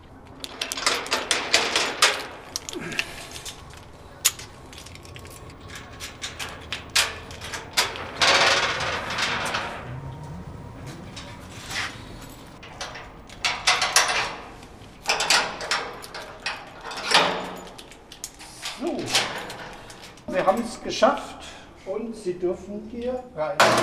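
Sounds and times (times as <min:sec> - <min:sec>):
metal grille door being unlocked and opened: 0:00.0 - 0:21.4, 0:23.6 - 0:23.8
metal grille door scraping slide: 0:00.4 - 0:18.1
speech: 0:20.9 - 0:21.3, 0:22.3 - 0:23.8.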